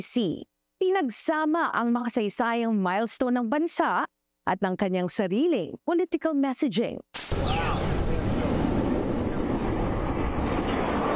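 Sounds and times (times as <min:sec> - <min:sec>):
speech: 0:00.0 - 0:07.4
fighter jets roaring overhead during independence anniversary celebration in Washington D.C.: 0:07.4 - 0:11.1.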